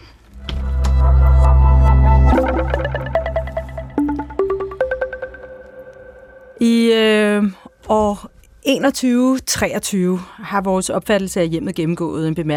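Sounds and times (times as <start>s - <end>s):
deep swelling synth drone in a podcast segment divider jingle: 0.3s - 6.6s
bright plucked notes stepping upward in an electronic jingle: 0.4s - 6.8s
speech: 6.6s - 12.5s.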